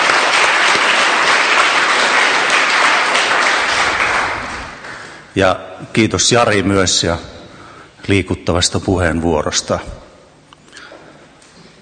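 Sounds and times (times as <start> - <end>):
room full of people applauding: 0.0 - 5.3
speech: 5.4 - 7.4, 8.0 - 10.1.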